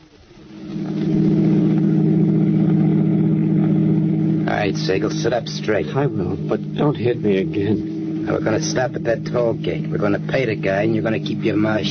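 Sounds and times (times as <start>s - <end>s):
car engine droning while driving toward a toll bridge: 0.0s - 11.9s
speech: 4.7s - 11.9s.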